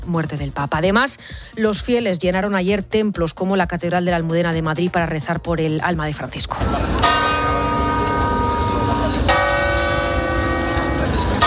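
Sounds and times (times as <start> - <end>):
speech: 0.1 - 7.2
church bells tolling in mourning for the death of a pope: 6.6 - 11.4.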